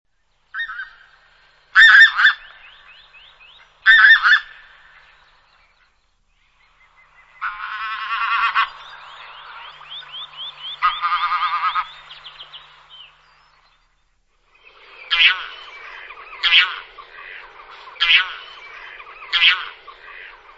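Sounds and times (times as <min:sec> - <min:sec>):
birds singing: 0:00.1 - 0:20.5
harvest goose calling: 0:01.8 - 0:03.0, 0:03.8 - 0:05.1, 0:07.4 - 0:13.2, 0:14.9 - 0:20.5.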